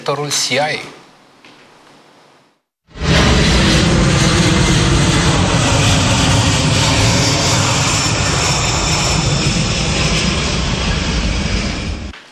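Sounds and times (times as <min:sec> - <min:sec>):
speech: 0:00.1 - 0:01.0
US military transport plane engines roaring while landing: 0:03.0 - 0:12.2.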